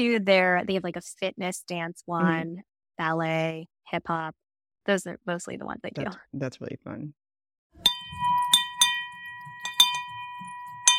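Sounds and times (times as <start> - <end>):
speech: 0.0 - 7.2
money bell clanging in celebration: 7.8 - 10.9.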